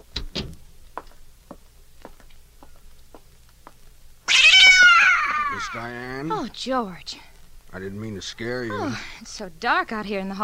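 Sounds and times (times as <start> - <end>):
cat meowing: 4.3 - 6.0
speech: 5.7 - 10.4.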